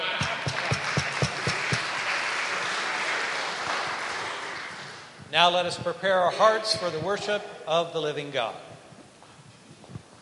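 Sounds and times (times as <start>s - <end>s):
room full of people applauding: 0.0s - 5.2s
speech: 5.4s - 8.7s.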